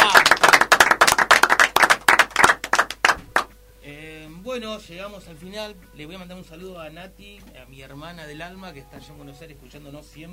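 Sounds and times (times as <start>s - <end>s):
brisk hand clapping: 0.0s - 3.6s
speech: 4.6s - 10.3s.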